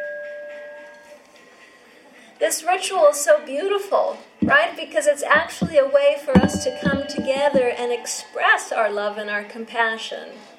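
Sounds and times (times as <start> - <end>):
speech: 2.6 - 10.5
bell ringing: 6.4 - 7.8.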